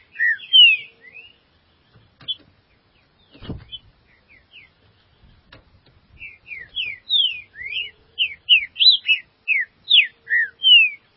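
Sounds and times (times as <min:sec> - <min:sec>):
Green-winged Saltator song of slurred whistles: 0:00.0 - 0:01.4, 0:06.2 - 0:11.1.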